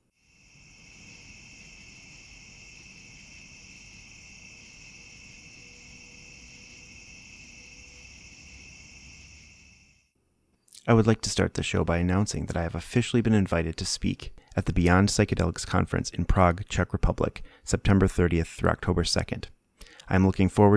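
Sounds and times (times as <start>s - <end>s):
night insects singing outdoors on an August evening in Michigan: 0.0s - 10.1s
speech: 10.8s - 20.7s.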